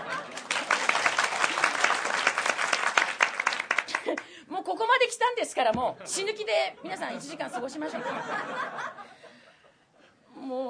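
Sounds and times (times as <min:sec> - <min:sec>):
laughter: 0:00.0 - 0:01.8, 0:06.8 - 0:09.7
audience applause: 0:00.0 - 0:04.2
speech: 0:04.1 - 0:09.1, 0:10.5 - 0:10.6.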